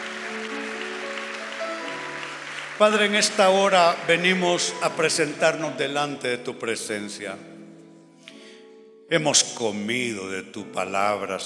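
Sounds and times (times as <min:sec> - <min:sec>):
crowd applauding after a prayer: 0:00.0 - 0:06.0
speech: 0:02.8 - 0:07.5, 0:09.1 - 0:11.4.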